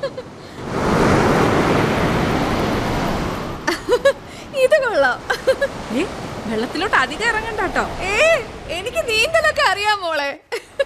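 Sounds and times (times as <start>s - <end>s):
speech: 0.0s - 0.8s, 5.1s - 10.7s
ocean waves crashing onto a beach shore: 0.0s - 10.8s.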